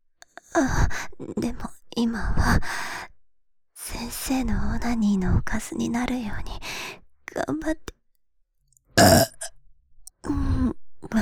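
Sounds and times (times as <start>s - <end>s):
speech: 0.6s - 2.9s, 4.0s - 6.7s, 7.3s - 7.9s
woman burping: 9.0s - 9.5s.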